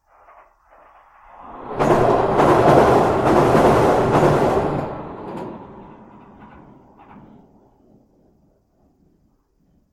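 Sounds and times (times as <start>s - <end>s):
ambience under a railway bridge: 0.0s - 9.9s.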